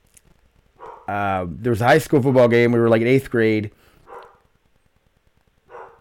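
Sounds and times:
dogs barking: 0.8s - 1.1s, 4.0s - 4.5s, 5.7s - 5.9s
speech: 1.1s - 3.9s.

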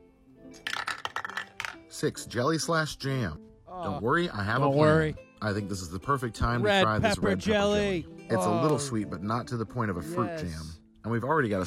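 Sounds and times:
d20 die clattering across a hard tabletop: 0.6s - 1.8s
speech: 2.0s - 11.6s.

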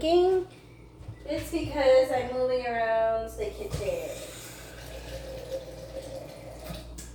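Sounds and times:
speech: 0.0s - 0.6s, 1.3s - 4.3s
water running steadily from a kitchen faucet: 3.5s - 7.1s.

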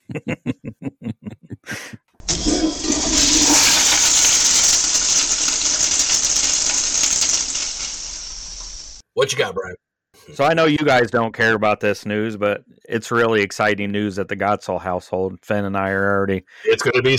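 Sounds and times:
laughter: 0.0s - 2.0s, 16.7s - 17.1s
rush of swirling toilet flush water: 2.2s - 9.0s
speech: 9.3s - 17.1s.

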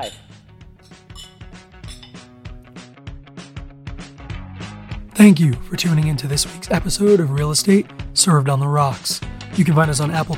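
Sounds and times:
speech: 0.0s - 0.2s, 5.2s - 10.3s
glasses clinking in a toast: 0.0s - 2.4s.

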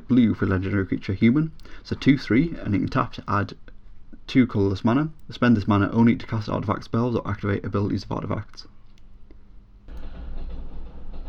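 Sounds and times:
speech: 0.1s - 3.7s, 4.3s - 8.8s
low heavy rumble of a passing train: 9.8s - 11.2s.

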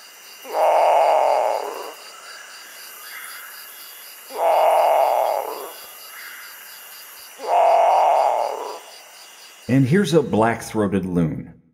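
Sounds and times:
great potoo giving harsh guttural roaring calls: 0.4s - 2.0s, 4.3s - 6.4s, 7.4s - 8.9s
speech: 9.7s - 11.6s.

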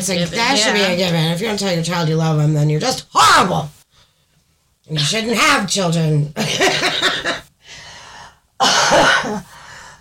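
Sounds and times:
speech: 0.0s - 3.8s, 4.9s - 7.4s, 8.6s - 9.5s
softer raspy trailing breath: 7.6s - 8.4s, 9.4s - 10.0s
sick person coughing harshly: 8.6s - 9.5s.

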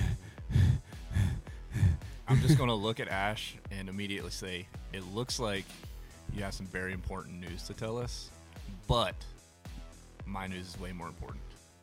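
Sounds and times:
voice imitating heavy out-of-breath panting: 0.0s - 2.6s
speech: 2.3s - 9.4s, 10.3s - 11.5s.

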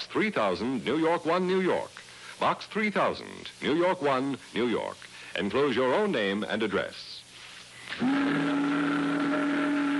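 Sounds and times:
speech: 0.1s - 7.2s
boat whistle: 8.0s - 9.9s.

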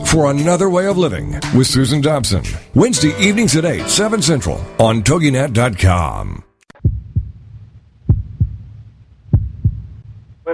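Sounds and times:
speech: 0.1s - 6.5s
faint low rumble: 6.8s - 10.4s
heartbeat sound effect thumping: 6.8s - 10.4s.

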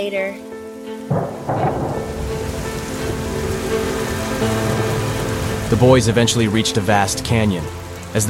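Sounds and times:
speech: 0.0s - 1.8s, 5.7s - 8.2s
heavy rain pounding the ground at the edge of a vast canyon: 0.0s - 8.2s
sharp thunder bursts: 1.1s - 7.3s
low rumble: 1.1s - 7.4s.

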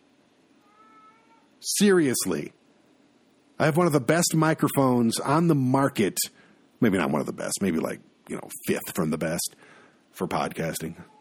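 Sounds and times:
cat meowing: 0.6s - 1.5s
speech: 1.6s - 2.6s, 3.6s - 11.1s.

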